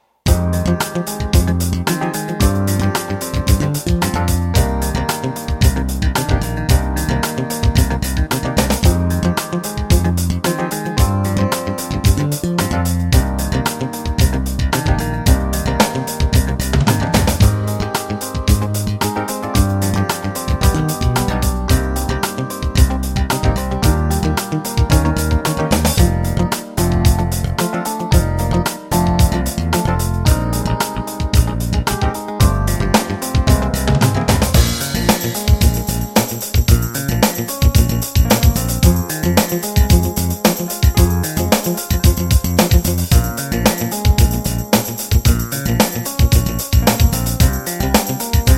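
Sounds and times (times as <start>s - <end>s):
sixteenth-note funk drum beat: 0.3s - 48.5s.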